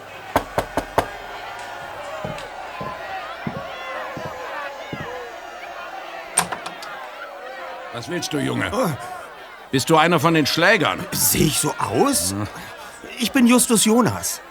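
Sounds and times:
room noise: 0.0s - 9.4s
laughter: 0.0s - 14.4s
low murmur of indistinct voices: 0.0s - 14.4s
knocking on a wooden door: 0.4s - 1.4s, 2.2s - 5.2s
speech: 8.0s - 9.1s, 9.7s - 14.4s.

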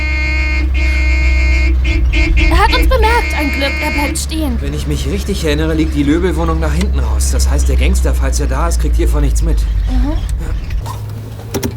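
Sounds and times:
car horn honking: 0.0s - 4.7s
low engine rumble: 0.0s - 11.7s
speech: 2.7s - 10.6s.

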